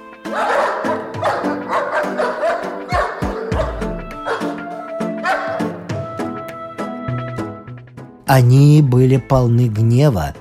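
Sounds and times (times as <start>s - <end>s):
several dogs barking: 0.2s - 5.9s
speech: 8.3s - 10.4s.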